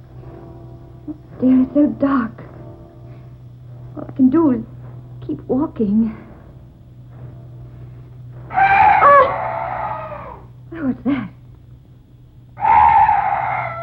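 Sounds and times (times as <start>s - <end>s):
steady low hum: 0.0s - 13.8s
speech: 1.1s - 2.4s, 4.0s - 4.7s, 5.3s - 6.2s, 10.8s - 11.3s
eerie night bird shrieks: 8.5s - 10.6s, 12.6s - 13.8s.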